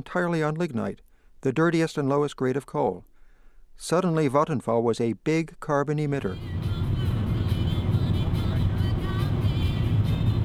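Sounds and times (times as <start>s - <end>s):
speech: 0.0s - 3.1s, 3.8s - 6.8s
car engine and road noise driving on the Autobahn: 6.2s - 10.4s.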